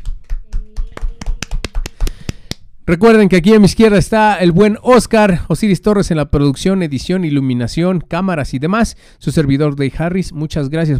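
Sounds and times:
small group clapping by hand: 0:00.0 - 0:02.6
speech: 0:02.9 - 0:10.9.

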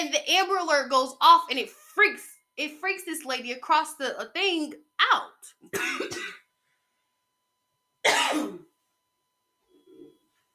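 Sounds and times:
speech: 0:00.0 - 0:06.4
coughing: 0:05.6 - 0:06.5, 0:08.0 - 0:08.8.

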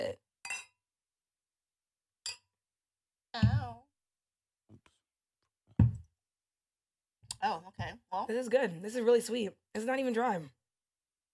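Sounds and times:
glasses clinking in a toast: 0:00.4 - 0:00.8, 0:02.3 - 0:02.5
speech: 0:07.4 - 0:10.6.

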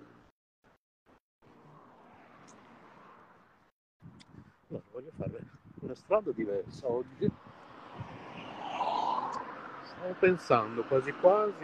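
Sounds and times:
car swishing past with road noise: 0:01.4 - 0:03.7, 0:07.2 - 0:11.6
speech: 0:04.7 - 0:07.4, 0:10.0 - 0:11.6.

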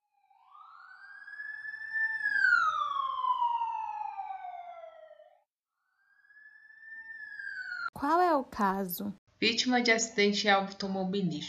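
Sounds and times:
ambulance siren wailing: 0:00.3 - 0:07.9
speech: 0:08.0 - 0:11.4.

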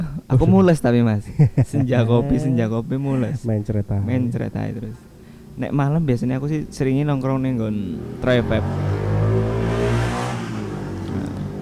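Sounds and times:
speech: 0:00.3 - 0:09.0
laughter: 0:01.2 - 0:03.5
Yamaha motorcycle engine revving in an advert: 0:06.5 - 0:11.6.

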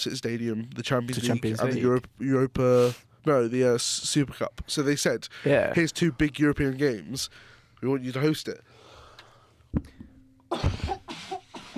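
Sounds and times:
speech: 0:00.0 - 0:08.8, 0:09.7 - 0:11.0
person coughing: 0:10.5 - 0:11.7.

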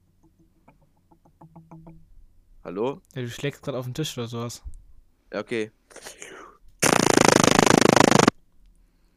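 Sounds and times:
speech: 0:02.7 - 0:04.7, 0:05.3 - 0:06.2
voice imitating a machine gun with tongue clicks: 0:06.8 - 0:08.3.

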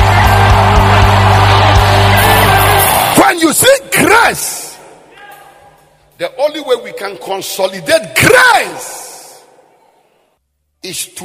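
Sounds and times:
audience shouting and screaming: 0:00.0 - 0:05.8
speech: 0:06.2 - 0:09.0, 0:10.8 - 0:11.2.

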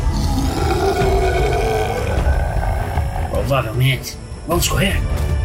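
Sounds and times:
giant maned wolf monster growling roar: 0:00.0 - 0:03.4
speech: 0:03.5 - 0:05.3.

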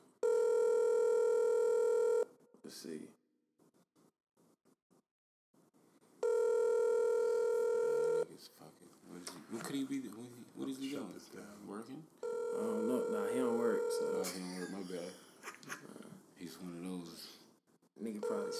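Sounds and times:
outgoing phone call ringback tone: 0:00.2 - 0:02.3, 0:06.2 - 0:08.2, 0:12.2 - 0:14.5, 0:18.2 - 0:18.5
speech: 0:02.7 - 0:03.2, 0:09.7 - 0:17.4, 0:18.0 - 0:18.5
person muttering: 0:14.2 - 0:16.2.

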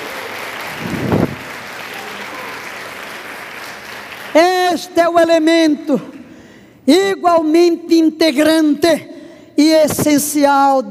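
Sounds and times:
congregation applauding: 0:00.0 - 0:05.0
speech: 0:04.4 - 0:06.2, 0:06.9 - 0:10.8.

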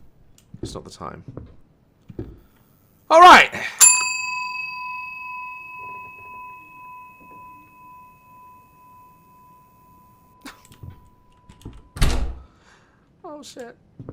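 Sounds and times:
speech: 0:00.6 - 0:01.5, 0:03.1 - 0:03.8, 0:13.5 - 0:13.9
bell in a video game ringing: 0:03.8 - 0:11.9.

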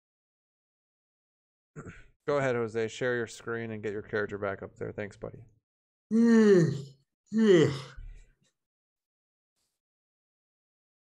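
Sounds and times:
speech: 0:01.8 - 0:08.0
person yawning: 0:06.1 - 0:08.0.

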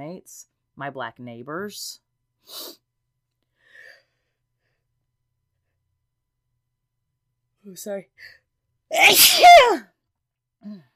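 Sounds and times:
speech: 0:00.0 - 0:02.8, 0:07.6 - 0:09.9, 0:10.6 - 0:10.9
loud sneeze: 0:08.9 - 0:09.8.

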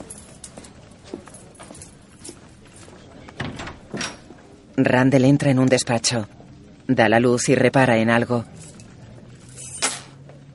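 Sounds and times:
speech: 0:04.8 - 0:08.6
keys tossed onto a desk: 0:09.6 - 0:10.2.

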